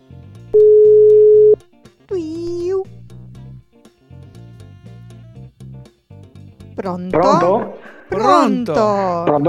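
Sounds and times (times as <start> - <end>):
telephone ringback tone on an outgoing call: 0.6 - 1.6
speech: 6.8 - 9.4.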